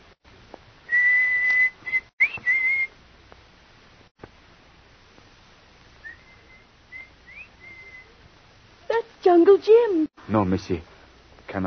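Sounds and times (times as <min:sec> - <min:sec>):
person giving a signal whistle: 0:00.9 - 0:02.9, 0:06.0 - 0:08.1
speech: 0:09.3 - 0:10.9.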